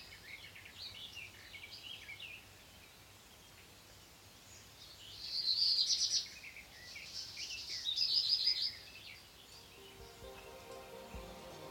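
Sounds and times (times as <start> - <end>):
steady background hiss: 0.0 - 11.6
Black redstart song: 9.5 - 11.6.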